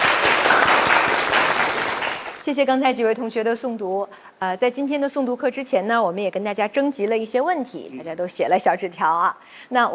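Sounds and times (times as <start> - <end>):
classmates applauding after a recitation in a class: 0.0 - 2.4
speech: 2.5 - 9.9.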